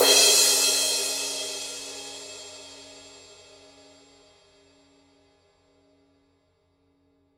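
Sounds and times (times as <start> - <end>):
Paiste 2002 18-inch crash cymbal struck on edge: 0.0 - 4.0.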